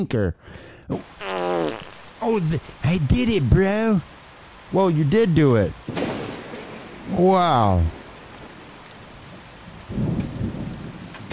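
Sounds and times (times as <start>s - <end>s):
speech: 0.0s - 6.0s, 7.1s - 8.0s
falling rain in a thunderstorm: 0.9s - 11.3s
deep rolling thunder rumble: 5.7s - 11.3s.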